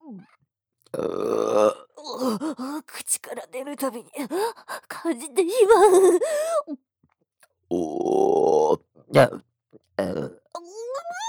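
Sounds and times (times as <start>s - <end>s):
loud raspy throaty burp: 0.9s - 2.0s, 7.7s - 10.5s
speech: 3.3s - 6.4s, 9.2s - 9.4s
short groaning vocal sound: 7.7s - 9.4s.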